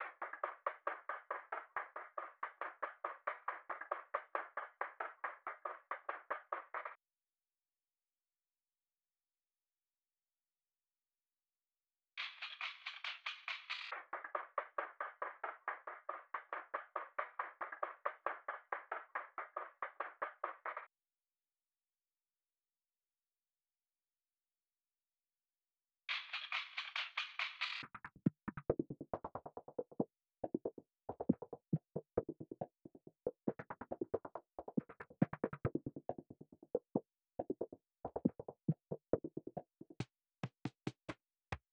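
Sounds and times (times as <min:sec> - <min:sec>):
138 BPM C minor trap percussion loop: 0:00.0 - 0:06.9, 0:12.3 - 0:20.8, 0:26.2 - 0:41.7.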